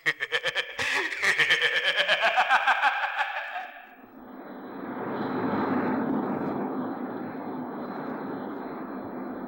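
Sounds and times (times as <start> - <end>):
laughter: 0.0 - 4.0
jet airplane flying in: 2.8 - 9.4.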